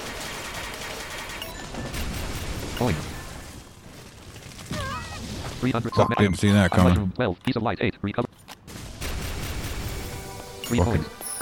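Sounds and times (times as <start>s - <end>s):
video game gunfire: 0.0s - 3.5s, 8.7s - 10.2s
speech: 2.8s - 3.1s, 5.6s - 8.3s, 10.7s - 11.2s.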